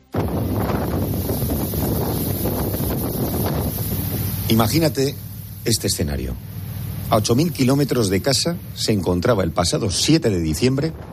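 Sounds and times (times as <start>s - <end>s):
strong wind over the open Indian Ocean buffeting the microphone: 0.0s - 4.8s, 10.6s - 11.1s
speech: 4.5s - 6.5s, 7.1s - 11.1s.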